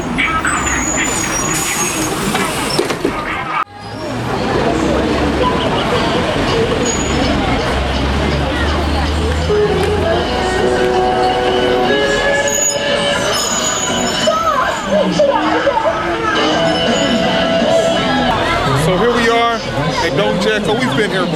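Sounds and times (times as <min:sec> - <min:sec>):
city bus hiss: 0:00.0 - 0:03.0, 0:12.0 - 0:15.1
city bus heavy engine rumbling: 0:00.0 - 0:21.3
street road noise: 0:00.0 - 0:21.3
faint murmuring voices: 0:00.1 - 0:21.3.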